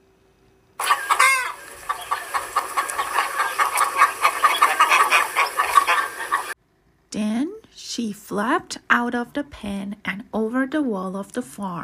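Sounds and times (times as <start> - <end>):
chicken squawking: 0.8 - 6.6
speech: 8.0 - 11.8.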